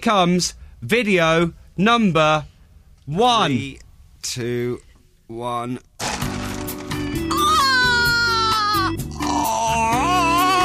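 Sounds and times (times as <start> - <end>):
speech: 0.0 - 2.5, 3.1 - 5.9
pigs squealing: 7.3 - 10.6
pigs grunting and snorting: 9.1 - 9.8.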